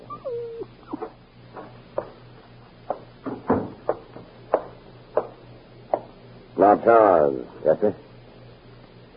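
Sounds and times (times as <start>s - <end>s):
dog whimpering in an apartment: 0.0s - 1.2s
faint steady hum: 0.0s - 9.1s
speech: 6.6s - 8.0s.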